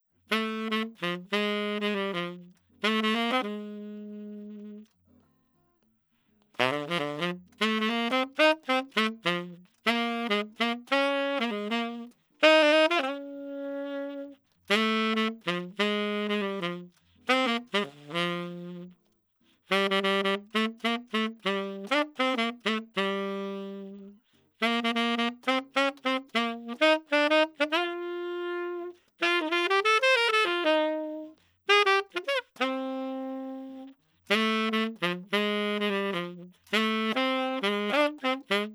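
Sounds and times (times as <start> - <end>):
walking saxophone line panned left center right: 0.3 - 4.9, 6.6 - 19.0, 19.7 - 38.7.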